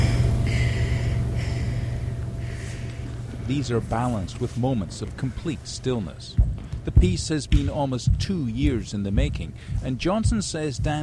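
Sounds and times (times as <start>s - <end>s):
dancers gasping for breath after frenetic dancing: 0.0s - 3.5s, 9.5s - 9.8s
low rumble: 0.0s - 11.0s
speech: 3.5s - 11.0s.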